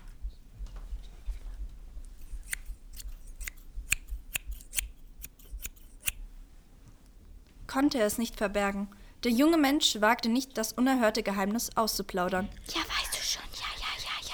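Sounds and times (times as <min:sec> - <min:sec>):
scissors cutting hair: 0:02.1 - 0:06.2
speech: 0:07.8 - 0:12.8.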